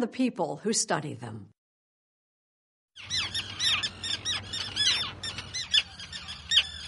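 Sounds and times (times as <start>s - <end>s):
speech: 0.0s - 1.6s
thousands of terns calling at an island seabird colony off the coast: 3.0s - 6.8s.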